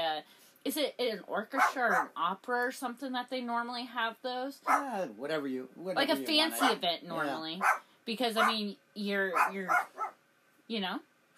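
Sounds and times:
speech: 0.2s - 11.1s
puppy yapping and whining: 1.6s - 2.1s, 4.6s - 5.0s, 7.6s - 7.8s, 8.4s - 8.6s, 9.3s - 10.2s.

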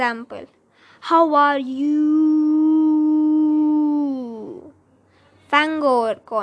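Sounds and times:
speech: 0.0s - 2.4s, 5.5s - 6.4s
human voice howling words like a wolf: 1.4s - 4.7s.

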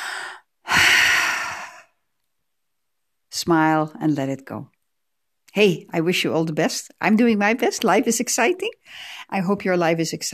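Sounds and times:
deep breath: 0.0s - 2.0s, 8.8s - 9.3s
speech: 3.4s - 4.8s, 5.6s - 10.3s.

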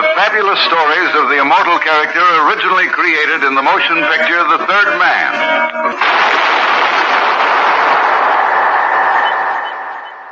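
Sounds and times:
speech: 0.3s - 7.3s
single gunshot in a sewer: 6.0s - 10.2s.

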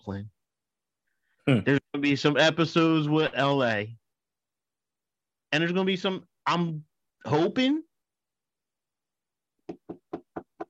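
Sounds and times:
speech: 0.0s - 0.4s, 1.5s - 4.0s, 5.5s - 7.8s
knocking on wood: 9.6s - 10.6s.

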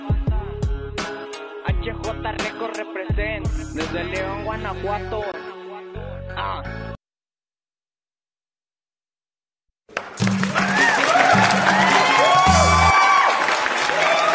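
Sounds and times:
speech: 2.0s - 5.3s, 6.4s - 6.8s
crowd clapping: 9.9s - 14.3s.

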